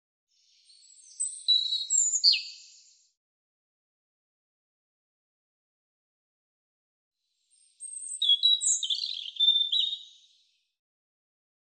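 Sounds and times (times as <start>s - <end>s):
European robin song: 0.3s - 3.1s, 7.5s - 10.6s.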